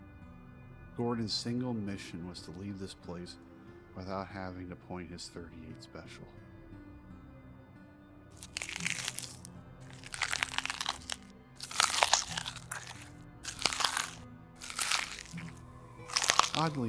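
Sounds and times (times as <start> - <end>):
speech: 1.0 - 6.5, 16.6 - 16.8
person eating with loud crisp crunching and biting: 8.4 - 16.8.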